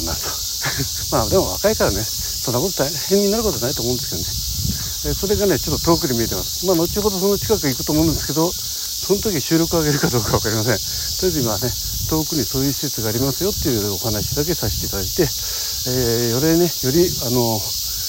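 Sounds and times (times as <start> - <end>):
laughter: 0.0 - 1.6, 9.8 - 10.8
summer cicadas and insects buzzing in a park with woodland in Japan: 0.0 - 18.0
speech: 0.1 - 4.4, 5.0 - 17.8.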